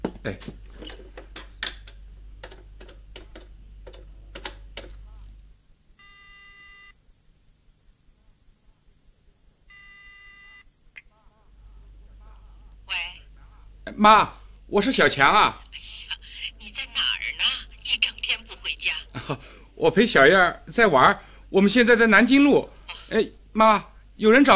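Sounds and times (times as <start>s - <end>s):
faint hum: 0.0s - 24.5s
speech: 0.2s - 0.6s, 14.0s - 15.6s, 19.3s - 24.5s
buzzy telephone ringing tones on a call home: 6.0s - 6.9s, 9.7s - 10.6s.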